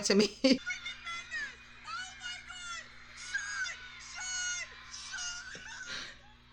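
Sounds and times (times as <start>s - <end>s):
steady hum: 0.0s - 6.5s
laughter: 0.2s - 6.5s
several voices screaming excitedly through a small tinny phone speaker: 0.6s - 5.9s.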